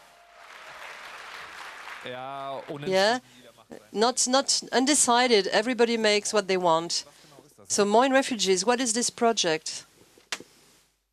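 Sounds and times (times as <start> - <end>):
audience applause at a hacker conference: 0.0 - 2.9
speech: 2.0 - 9.9.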